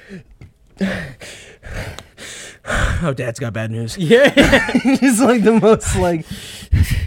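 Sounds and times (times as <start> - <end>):
person imitating heavy rasping breathing: 0.0 - 3.1, 5.8 - 7.0
speech: 0.1 - 1.4, 3.0 - 6.5
laughter: 4.0 - 6.3.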